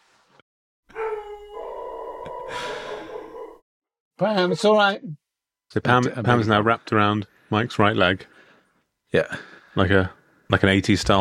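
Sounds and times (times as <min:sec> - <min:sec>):
old female hunting dog howling: 0:00.9 - 0:03.6
speech: 0:04.2 - 0:08.3, 0:09.1 - 0:11.1.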